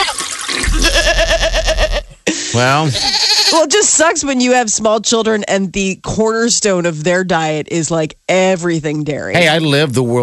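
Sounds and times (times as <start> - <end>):
goat bleating: 0.7 - 2.2, 2.8 - 3.7, 9.4 - 9.9
speech: 2.6 - 10.2.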